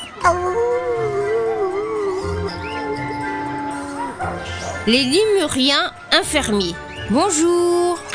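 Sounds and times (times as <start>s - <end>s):
wolves howling in chorus: 0.0s - 4.9s
speech: 4.8s - 8.0s.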